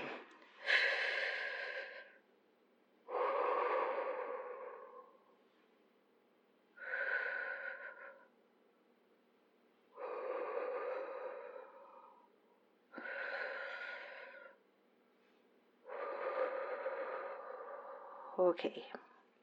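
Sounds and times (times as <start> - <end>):
slow deep breathing to calm nerves before a flight: 0.0 - 2.3, 3.0 - 5.4, 6.8 - 8.4, 9.9 - 14.6, 15.2 - 19.3.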